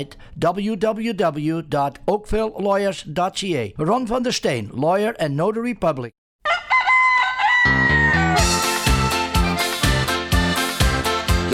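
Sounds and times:
speech: 0.0s - 6.2s
rooster crowing: 6.4s - 8.9s
upbeat band with thumping drums: 8.2s - 11.5s.

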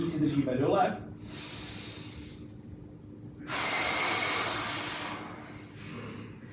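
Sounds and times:
speech: 0.0s - 1.5s
deep slow breath during a kneeling stretch: 1.2s - 2.5s, 3.4s - 6.5s.

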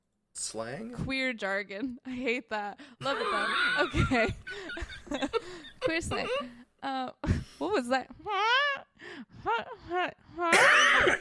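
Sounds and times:
speech: 0.4s - 11.2s
laughter: 3.0s - 6.5s
stifled cough: 6.1s - 6.5s, 10.5s - 11.2s.

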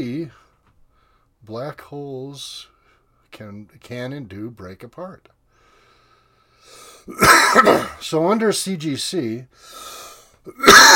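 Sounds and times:
speech: 0.0s - 0.4s, 1.4s - 2.7s, 3.3s - 5.4s, 6.6s - 10.9s
harsh cough: 7.1s - 8.0s, 10.5s - 10.9s.

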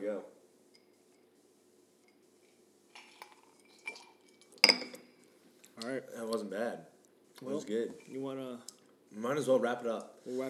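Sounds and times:
glasses clinking together in a toast: 0.8s - 1.3s, 3.0s - 5.2s
speech: 5.8s - 10.4s.

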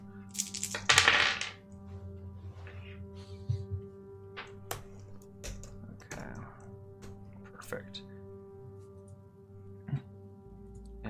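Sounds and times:
steady low hum: 0.0s - 11.0s
dice clattering across a hard tabletop: 0.3s - 1.6s
speech: 7.7s - 8.1s.

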